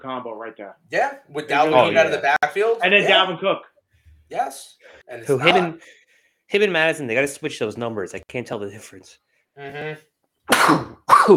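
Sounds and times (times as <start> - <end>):
speech: 0.0 - 3.7, 4.3 - 11.3
loud sneeze: 10.5 - 11.3.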